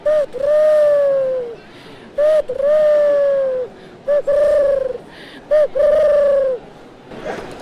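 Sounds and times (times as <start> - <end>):
person imitating a turtle dove's cooing: 0.0 - 1.6, 2.2 - 6.6
faint noise: 0.0 - 7.6.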